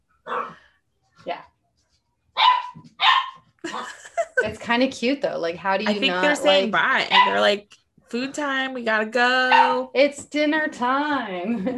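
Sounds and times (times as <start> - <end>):
two puppies barking at each other: 0.3 - 0.6, 2.4 - 3.5, 7.1 - 7.5
speech: 1.2 - 1.5, 4.7 - 11.7
laughter: 3.6 - 4.6, 5.9 - 6.9, 11.4 - 11.7.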